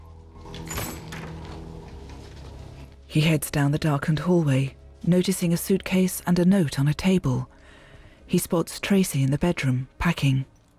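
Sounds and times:
apartment door closing with a muffled thud: 0.5s - 2.2s
speech: 3.1s - 7.5s, 8.3s - 10.5s.

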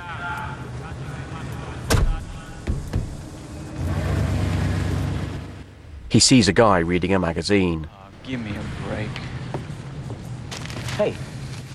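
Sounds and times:
car engine rumbling as the car pulls off: 0.0s - 11.7s
heavy thuds: 1.9s - 7.6s
speech: 6.1s - 9.3s, 11.0s - 11.3s.

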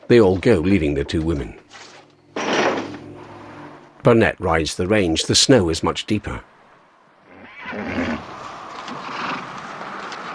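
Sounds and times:
speech: 0.1s - 1.9s, 4.0s - 6.5s
horse whinnying while struggling in snow: 7.3s - 8.3s.

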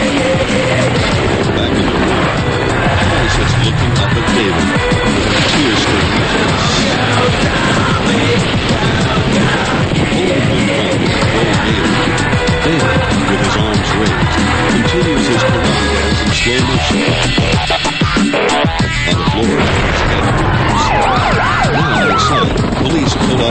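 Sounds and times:
helicopters flying over a city: 0.0s - 23.4s
people shouting: 0.4s - 16.2s, 20.1s - 22.6s.

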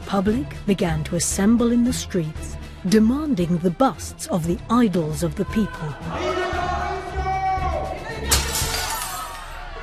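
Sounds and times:
speech: 0.1s - 6.8s
tinkling shards of window glass: 8.3s - 9.5s
workshop window glass shattering in a sharp loud crash: 8.3s - 9.5s.

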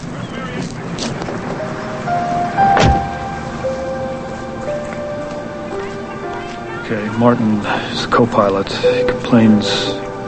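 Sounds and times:
low constant hum: 0.0s - 10.2s
rain: 0.0s - 10.2s
sedan car door closing: 2.6s - 3.3s
speech: 6.9s - 10.0s.

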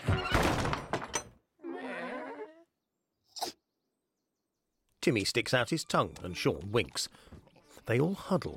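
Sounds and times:
heavy wooden barn door slamming shut: 0.0s - 1.3s
short bleating animal call: 1.6s - 2.7s
speech: 5.0s - 8.5s.

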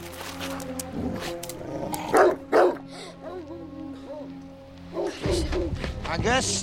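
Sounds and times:
dog barking at the water at the edge of a loch: 2.1s - 2.8s, 4.9s - 5.7s
speech: 6.2s - 6.6s.

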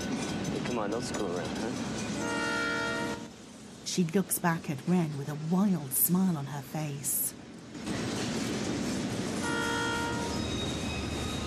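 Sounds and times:
train rumbling on tracks: 0.0s - 11.4s
speech: 0.8s - 2.4s, 4.0s - 8.1s
train horn blast: 2.2s - 3.3s, 9.4s - 10.4s.

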